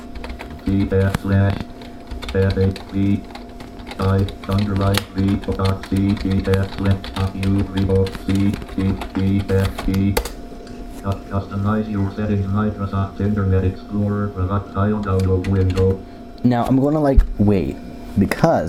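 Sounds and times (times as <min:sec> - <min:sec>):
fingers typing on a computer keyboard: 0:00.0 - 0:10.3, 0:15.0 - 0:16.0
speech: 0:00.7 - 0:01.7, 0:02.3 - 0:03.4, 0:04.0 - 0:10.3, 0:11.0 - 0:18.6.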